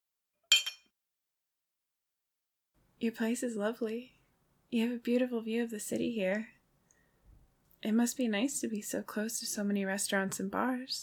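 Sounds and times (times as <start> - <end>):
drinking glasses clinking in a toast: 0.5 - 0.9
speech: 3.0 - 6.5, 7.8 - 11.0.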